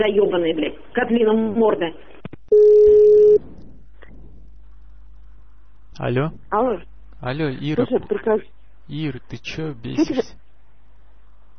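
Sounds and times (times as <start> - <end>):
speech: 0.0 - 3.4, 6.0 - 10.4
telephone tone mid-pitched beep: 2.5 - 3.4.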